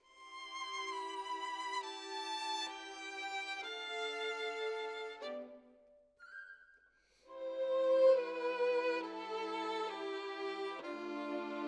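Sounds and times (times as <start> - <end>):
solo violin: 0.0 - 5.8, 7.3 - 11.6.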